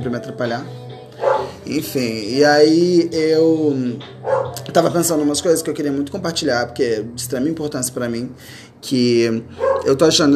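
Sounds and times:
speech: 0.0s - 10.3s
single dog bark: 1.2s - 1.6s, 4.2s - 4.6s, 9.6s - 9.9s.

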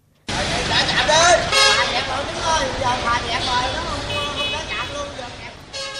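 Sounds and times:
steady traffic noise at a toll plaza: 0.0s - 5.9s
car horns honking at a toll plaza in Can Tho Vietnam: 1.4s - 2.3s, 3.4s - 5.9s.

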